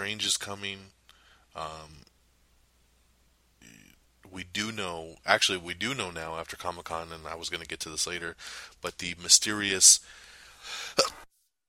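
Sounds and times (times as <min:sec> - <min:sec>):
speech: 0:00.0 - 0:01.0, 0:01.6 - 0:02.1, 0:03.6 - 0:11.2
person sneezing: 0:10.7 - 0:11.3.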